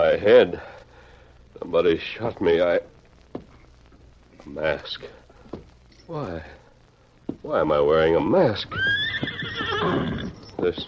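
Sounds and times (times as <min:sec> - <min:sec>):
speech: 0:00.0 - 0:00.7, 0:01.6 - 0:03.4, 0:04.4 - 0:05.2, 0:06.1 - 0:06.6, 0:07.3 - 0:10.8
horse whinnying with a wavering neigh: 0:08.6 - 0:10.6.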